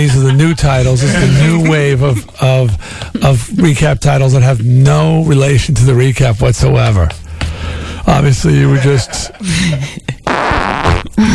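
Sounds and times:
laughter: 0.0s - 3.8s, 8.1s - 10.3s
speech: 0.0s - 7.2s, 8.1s - 10.1s
loud sputtering fart: 10.2s - 11.3s.

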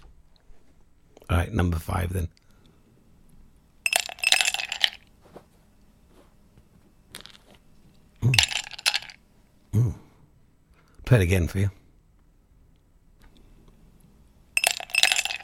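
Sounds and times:
speech: 1.3s - 2.4s, 11.1s - 11.8s
ice cubes clinking and rattling against a glass: 3.9s - 5.0s, 8.3s - 9.2s, 14.6s - 15.4s.

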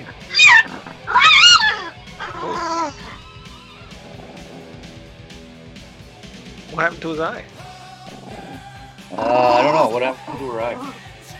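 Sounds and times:
one-eyed dog making high, whiny calls: 0.0s - 5.2s, 8.1s - 11.0s
speech: 6.8s - 7.6s, 9.1s - 11.0s.

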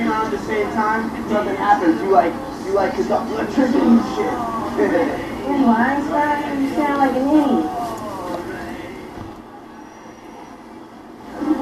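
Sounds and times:
train approaching on rails at a third-rail line: 0.0s - 11.5s
speech: 0.1s - 7.8s
faint high squeal of a train: 9.7s - 11.0s.

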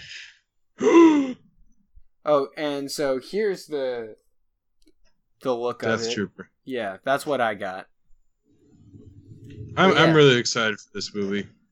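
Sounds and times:
person gasping: 0.0s - 1.5s
speech: 2.3s - 4.2s, 5.4s - 7.9s, 9.8s - 11.6s.

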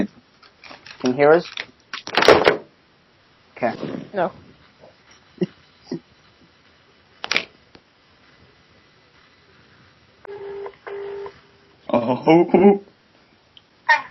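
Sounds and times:
speech: 1.0s - 1.6s, 3.6s - 4.5s, 12.1s - 12.9s
telephone tones while dialing a customer service number: 10.3s - 11.3s.

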